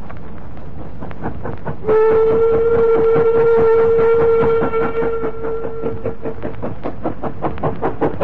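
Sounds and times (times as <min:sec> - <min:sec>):
steam goods train chuffing up an incline from Nottingham to Chesterfield: 0:00.0 - 0:08.2
long sustained steam train whistle: 0:01.8 - 0:06.4.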